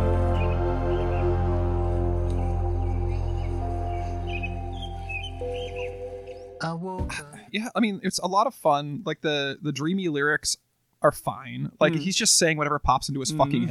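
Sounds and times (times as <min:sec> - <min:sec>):
birds chirping and tweeting in a park in the morning: 0:00.0 - 0:06.6
loud steady bed of sustained musical tones: 0:00.0 - 0:06.9
speech: 0:06.6 - 0:13.6.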